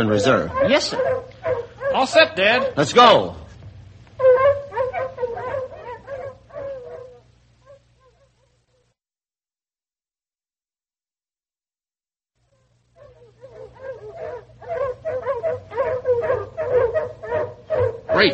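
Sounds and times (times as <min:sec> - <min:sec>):
pack of tracking hounds in a harness baying and howling while trailing a scent: 0:00.0 - 0:02.8, 0:04.2 - 0:08.7, 0:12.6 - 0:18.3
speech: 0:00.0 - 0:03.4, 0:18.2 - 0:18.3.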